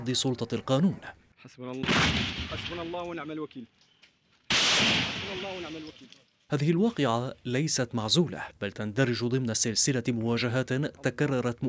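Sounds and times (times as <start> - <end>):
speech: 0.0 - 3.9, 4.8 - 11.6
gunshots during army sweep operations: 1.8 - 3.1, 4.5 - 5.9.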